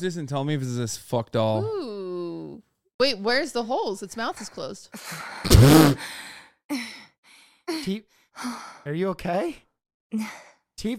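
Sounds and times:
speech: 0:00.0 - 0:02.0, 0:03.0 - 0:07.0, 0:07.7 - 0:10.9
heavy breathing: 0:05.0 - 0:08.9.

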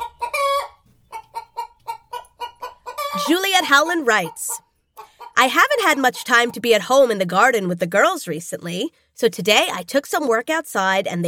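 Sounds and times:
hen clucking: 0:00.0 - 0:07.2
speech: 0:03.2 - 0:04.6, 0:05.4 - 0:11.2.

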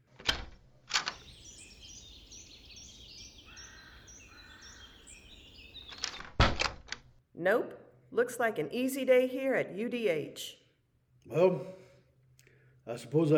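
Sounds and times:
birds chirping outdoors: 0:01.0 - 0:06.4
door clunking open: 0:05.9 - 0:07.1
speech: 0:07.4 - 0:10.6, 0:11.3 - 0:11.8, 0:12.9 - 0:13.3.

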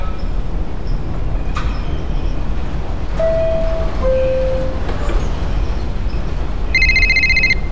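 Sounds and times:
subway train in motion rumbling: 0:00.0 - 0:07.7
phone ringing with a bright electronic trill: 0:06.8 - 0:07.7.

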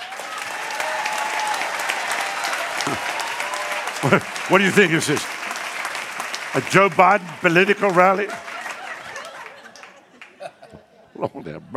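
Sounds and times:
audience applause: 0:00.0 - 0:10.6
laughter: 0:02.2 - 0:05.6, 0:06.4 - 0:11.6
speech: 0:04.0 - 0:05.4, 0:06.5 - 0:08.5, 0:11.2 - 0:11.7.

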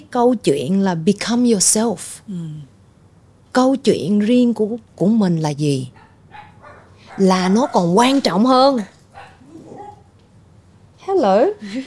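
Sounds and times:
speech: 0:00.1 - 0:02.7, 0:03.6 - 0:06.0, 0:07.2 - 0:09.0, 0:11.1 - 0:11.8
faint murmuring: 0:05.9 - 0:10.2
dog letting out a loud wavering whine-yelp: 0:06.0 - 0:10.2.

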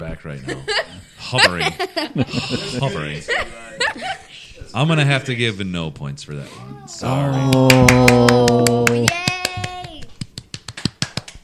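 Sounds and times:
speech: 0:00.1 - 0:09.3
laughter: 0:00.4 - 0:04.5
child's voice: 0:06.5 - 0:07.5, 0:08.6 - 0:10.2
hands clapping: 0:07.4 - 0:11.4.

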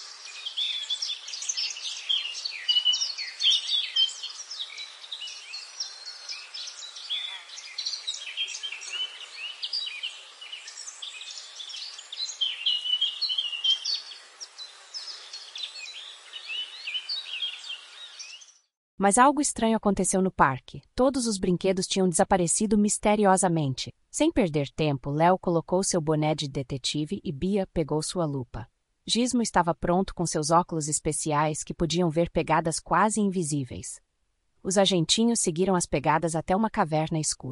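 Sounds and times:
chorus of several birds singing on a sunny morning: 0:00.0 - 0:18.7
speech: 0:19.0 - 0:34.0, 0:34.6 - 0:37.5.

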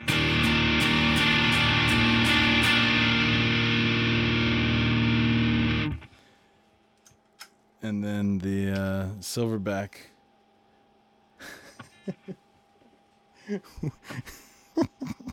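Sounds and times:
heavily distorted electric guitar chord through an overdrive pedal at maximum volume: 0:00.0 - 0:06.2
speech: 0:07.8 - 0:10.1, 0:13.5 - 0:15.3
laughter: 0:13.4 - 0:15.3.

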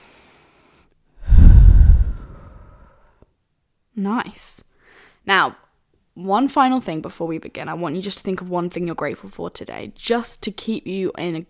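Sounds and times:
deep breath during a guided calming exercise: 0:01.2 - 0:03.1
speech: 0:04.0 - 0:05.6, 0:06.2 - 0:11.4.

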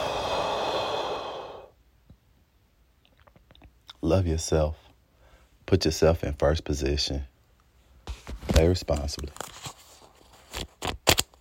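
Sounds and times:
person breathing in and out slowly: 0:00.0 - 0:01.8
speech: 0:04.0 - 0:04.8, 0:05.7 - 0:07.3, 0:08.5 - 0:09.7.

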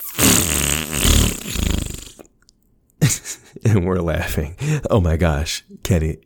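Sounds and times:
fart noise played by a smart speaker on request: 0:00.0 - 0:02.2
speech: 0:03.6 - 0:06.2.

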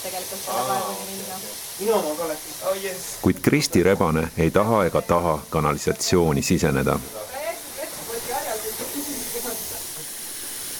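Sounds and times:
speech: 0:00.0 - 0:07.4
water running from taps into a drain: 0:00.0 - 0:10.7.

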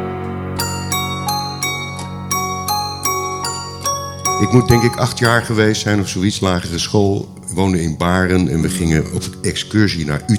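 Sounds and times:
huge church bell striking with a deep booming tone: 0:00.1 - 0:10.1
brighter bells clanging in a steady rhythm: 0:00.6 - 0:07.6
speech: 0:04.4 - 0:10.3.

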